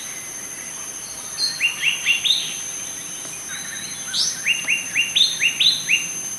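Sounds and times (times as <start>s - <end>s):
adult male Blue-winged Leafbird foraging calls in Kledang Sayong Forest Reserve Perak: 1.3s - 6.1s.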